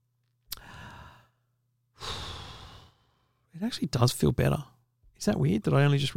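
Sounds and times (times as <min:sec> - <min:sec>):
deep breathing during a stress-relief moment: 0:00.5 - 0:03.5
speech: 0:03.6 - 0:06.1.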